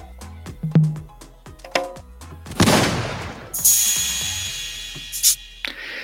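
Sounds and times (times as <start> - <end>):
assorted percussion hits and drum samples: 0.5 - 6.0
noisy crash-like swell: 2.7 - 5.7
bright shimmering tones: 3.6 - 6.0.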